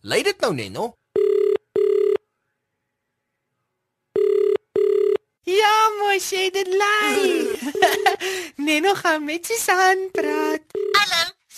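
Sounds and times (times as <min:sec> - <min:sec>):
speech: 0:00.0 - 0:01.0, 0:05.5 - 0:11.3
telephone ringback tone after dialing a number: 0:01.2 - 0:02.2, 0:04.2 - 0:05.3, 0:10.7 - 0:11.1
laughter: 0:07.0 - 0:08.4.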